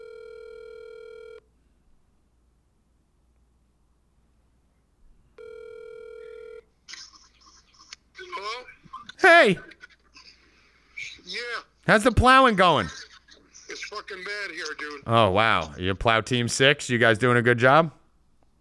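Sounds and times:
phone ringback tone over a speakerphone: 0:00.0 - 0:01.4, 0:05.4 - 0:06.7
speech: 0:09.4 - 0:09.7, 0:11.9 - 0:13.0, 0:14.1 - 0:18.0.

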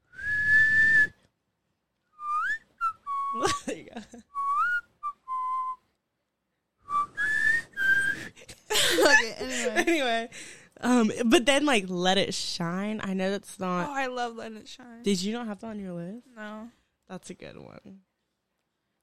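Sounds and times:
person whistling a song melody: 0:00.0 - 0:01.2, 0:02.1 - 0:03.6, 0:04.3 - 0:05.9, 0:06.8 - 0:08.4
laughter: 0:03.4 - 0:04.2, 0:08.2 - 0:10.3
speech: 0:09.4 - 0:18.1.

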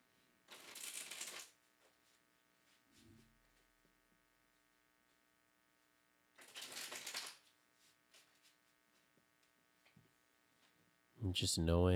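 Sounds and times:
tarot cards being shuffled: 0:00.5 - 0:01.5, 0:06.4 - 0:07.5
speech: 0:11.2 - 0:11.9.

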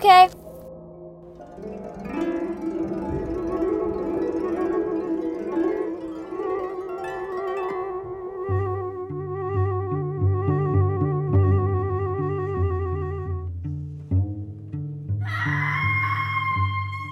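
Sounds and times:
speech: 0:00.0 - 0:00.4
steady droning musical backdrop: 0:00.0 - 0:17.1
shrill wavering scream: 0:15.2 - 0:17.1.

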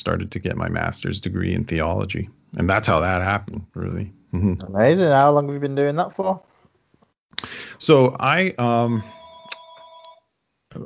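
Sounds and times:
speech: 0:00.0 - 0:06.5, 0:07.4 - 0:09.2
phone ringing with a bright electronic ringtone: 0:09.0 - 0:10.3.

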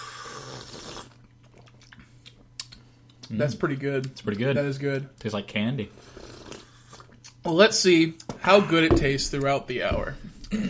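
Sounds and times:
big noisy slurp of hot tea: 0:00.0 - 0:01.2, 0:06.0 - 0:07.2
speech: 0:03.3 - 0:06.2, 0:07.4 - 0:10.6.

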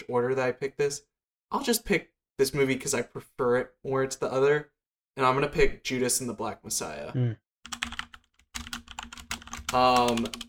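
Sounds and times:
speech: 0:00.1 - 0:08.0, 0:09.7 - 0:10.4
computer keyboard keys clicking: 0:07.7 - 0:10.4.

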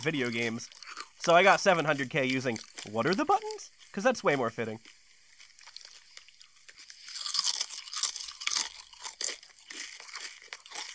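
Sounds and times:
speech: 0:00.0 - 0:05.0
crisp crunching sound effect: 0:00.0 - 0:10.9.

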